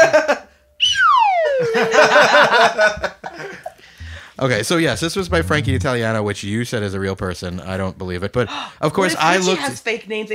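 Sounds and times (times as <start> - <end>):
slide whistle swooping downward: 0.8 - 2.0
people laughing: 1.6 - 3.9
speech: 1.8 - 3.6, 4.4 - 10.3.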